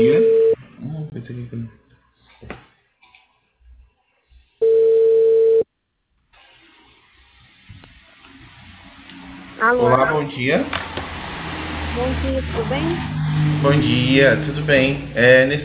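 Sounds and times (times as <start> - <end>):
telephone tone while placing a phone call: 0.0 - 0.6, 4.6 - 5.6
speech: 9.7 - 10.9, 12.0 - 15.6.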